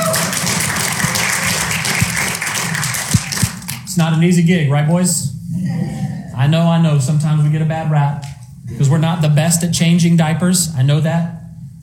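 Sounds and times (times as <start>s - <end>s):
crowd applauding with many hands clapping: 0.0s - 3.8s
speech: 4.0s - 11.8s.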